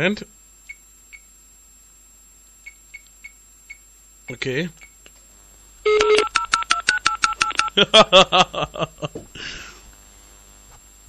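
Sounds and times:
speech: 0:00.0 - 0:00.4, 0:04.3 - 0:04.9, 0:07.8 - 0:09.7
telephone keypad beeps dialing a TV shopping line: 0:05.9 - 0:07.8
laughter: 0:07.7 - 0:09.8.

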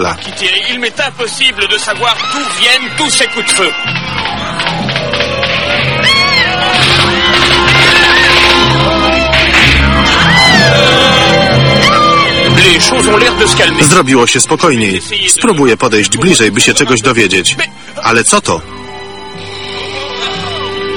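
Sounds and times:
speech: 0:00.0 - 0:04.3, 0:12.8 - 0:18.8
people shouting: 0:01.9 - 0:12.6, 0:19.8 - 0:20.8.

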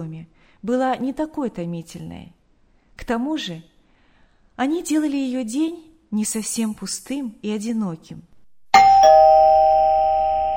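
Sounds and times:
speech: 0:00.0 - 0:02.4, 0:03.0 - 0:03.7, 0:04.6 - 0:08.9
bright electronic doorbell chime at the front door of a house: 0:08.8 - 0:10.5.

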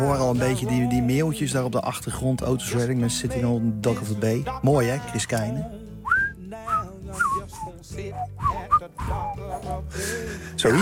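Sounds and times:
speech: 0:00.0 - 0:05.9, 0:09.9 - 0:10.8
person whistling a soul-song melody: 0:06.0 - 0:10.3.

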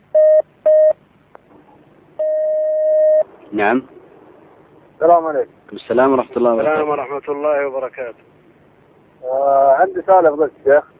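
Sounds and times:
telephone beeps as a call connects: 0:00.2 - 0:01.0, 0:02.2 - 0:03.2
speech: 0:03.5 - 0:04.0, 0:05.0 - 0:08.4, 0:09.2 - 0:10.9.

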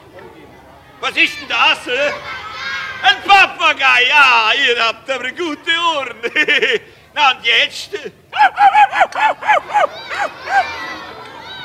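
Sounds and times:
speech: 0:01.0 - 0:02.3, 0:03.0 - 0:11.1
laughter: 0:06.0 - 0:07.0, 0:08.4 - 0:11.5
person's voice imitating a dog barking: 0:08.3 - 0:10.8.

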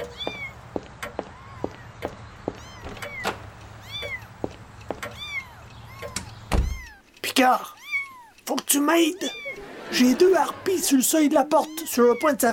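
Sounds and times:
kittens meowing in a box: 0:00.0 - 0:00.6, 0:01.2 - 0:04.4, 0:05.1 - 0:12.5
speech: 0:07.4 - 0:07.7, 0:08.5 - 0:12.5
laughter: 0:09.3 - 0:11.1.

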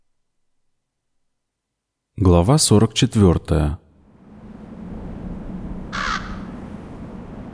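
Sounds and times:
low steady hum: 0:00.0 - 0:07.5
speech: 0:02.2 - 0:03.8
raven calling with a harsh rasping caw: 0:05.8 - 0:06.8.

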